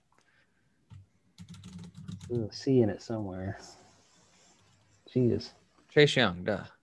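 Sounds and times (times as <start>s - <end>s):
typing on a computer keyboard: 0.9s - 2.4s
speech: 2.3s - 3.8s, 5.2s - 6.8s.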